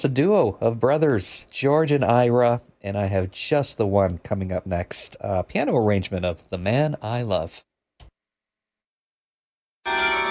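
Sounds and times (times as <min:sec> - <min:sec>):
speech: 0:00.0 - 0:07.7
church carillon bells ringing: 0:09.9 - 0:10.3.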